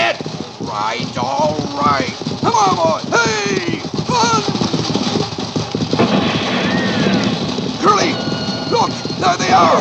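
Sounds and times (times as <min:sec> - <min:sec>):
constant rolling noise: 0:00.0 - 0:09.7
hooves of driven horses clip-clopping: 0:00.0 - 0:09.7.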